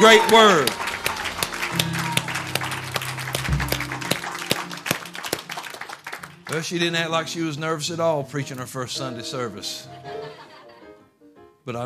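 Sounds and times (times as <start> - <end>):
speech: 0.0 - 0.8, 6.5 - 10.2, 11.7 - 11.8
audience shouting praise: 0.0 - 2.8
audience clapping: 0.0 - 7.3
laughter: 9.8 - 10.9.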